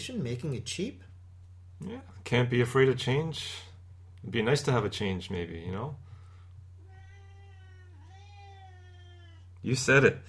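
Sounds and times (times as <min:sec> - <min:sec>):
speech: 0:00.0 - 0:01.1, 0:01.8 - 0:06.0, 0:09.6 - 0:10.2
steady low electrical hum: 0:00.0 - 0:10.2
hungry cat meowing: 0:06.8 - 0:09.6.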